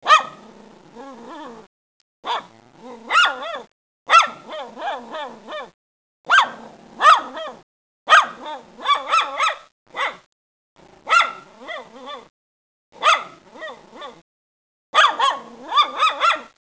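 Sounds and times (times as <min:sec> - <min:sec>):
schnauzer: 0:00.0 - 0:00.4, 0:02.2 - 0:10.3, 0:11.1 - 0:12.3, 0:13.0 - 0:14.2, 0:15.0 - 0:16.6.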